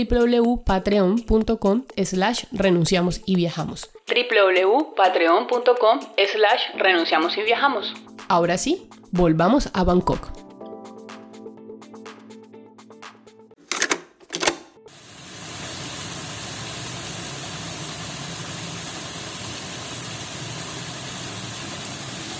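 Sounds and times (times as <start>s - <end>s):
speech: 0.0s - 10.4s
water running in an artificial temple lake: 14.9s - 22.3s.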